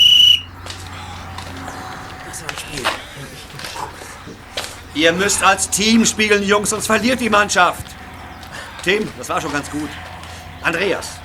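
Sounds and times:
coach's referee whistle blast stopping a boys' football game: 0.0s - 0.5s
laughter: 0.7s - 11.2s
speech: 5.0s - 8.0s, 8.8s - 11.2s.

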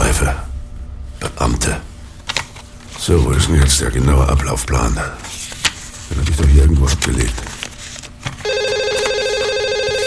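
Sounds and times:
speech: 1.4s - 1.9s, 3.0s - 5.4s, 6.1s - 7.5s
telephone ringing with a bright electronic tone: 8.4s - 10.0s.

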